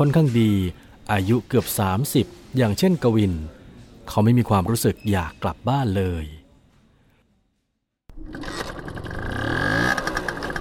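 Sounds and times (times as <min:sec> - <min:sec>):
speech: 0:00.0 - 0:06.4
old motorcycle engine riding: 0:08.1 - 0:10.5.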